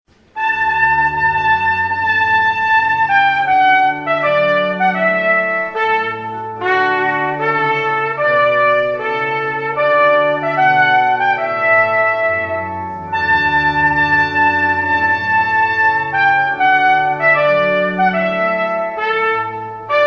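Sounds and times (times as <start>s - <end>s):
trumpet tune: 0.1s - 20.0s.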